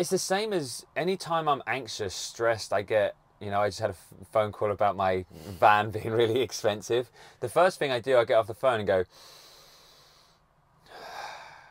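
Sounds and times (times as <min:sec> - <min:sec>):
speech: 0:00.0 - 0:09.4
calming breaths drawn in through the nose: 0:09.1 - 0:11.6.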